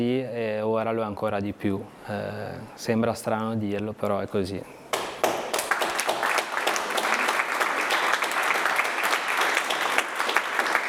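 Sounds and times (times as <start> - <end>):
speech: 0.0 - 4.8
loud sustained applause from a large audience: 4.9 - 10.8.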